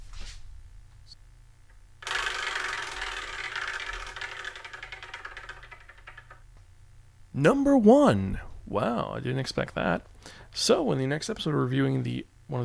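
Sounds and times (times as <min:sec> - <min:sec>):
prize wheel spinning: 0:02.0 - 0:06.4
speech: 0:07.4 - 0:12.6.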